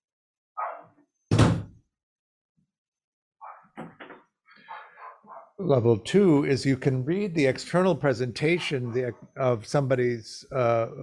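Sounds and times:
door shutting with a solid thud: 0:01.3 - 0:01.8
door creak: 0:03.7 - 0:04.3
speech: 0:05.6 - 0:11.0.

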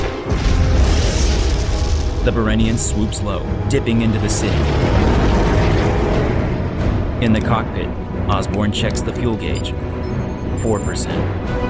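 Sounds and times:
heavy blaster cannon fire hitting a gunship: 0:00.0 - 0:03.0, 0:04.3 - 0:06.6
speech: 0:02.2 - 0:06.0, 0:07.2 - 0:10.0, 0:10.6 - 0:11.6.

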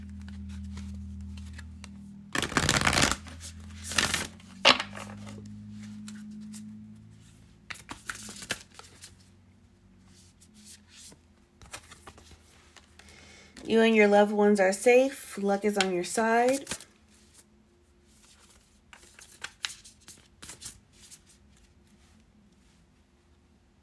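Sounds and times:
tarot cards being shuffled and drawn: 0:00.0 - 0:09.3, 0:10.1 - 0:13.1, 0:15.6 - 0:17.5, 0:18.1 - 0:22.2
low steady hum: 0:00.0 - 0:23.8
speech: 0:13.7 - 0:16.8.

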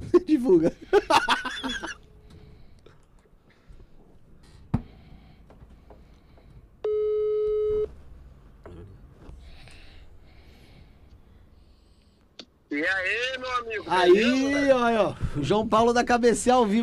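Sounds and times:
laughter: 0:00.1 - 0:02.0
speech: 0:00.4 - 0:01.4, 0:13.9 - 0:16.8
telephone ringback tone while placing a call: 0:06.9 - 0:07.9.

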